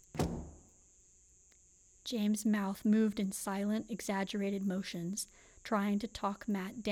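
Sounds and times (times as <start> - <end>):
heavy back door slamming shut: 0.0 - 0.6
speech: 2.1 - 6.9.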